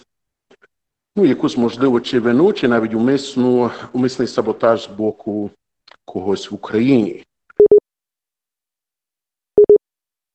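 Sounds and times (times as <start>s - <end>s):
speech: 1.2s - 7.3s
telephone line tone during call hold: 9.6s - 9.8s.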